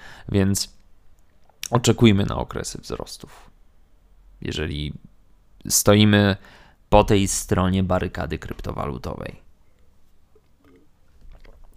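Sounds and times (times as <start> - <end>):
speech: 0.2 - 0.8, 1.7 - 3.5, 4.4 - 9.4
person sipping and swallowing water: 10.3 - 11.7.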